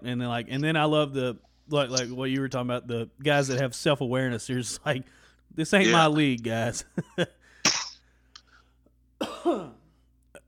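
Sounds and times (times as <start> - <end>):
speech: 0.0 - 7.4
faint breathy sounds: 5.0 - 5.5, 7.4 - 8.9
harsh coughs: 7.7 - 8.0, 9.2 - 10.0.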